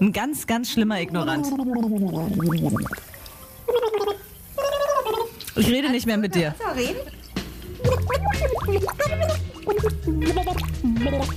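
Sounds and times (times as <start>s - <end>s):
speech: 0.0s - 3.1s, 5.6s - 7.2s, 8.0s - 11.3s
person making bubbling gargle sounds while dunked underwater: 1.2s - 3.0s, 3.7s - 5.4s, 7.8s - 11.3s.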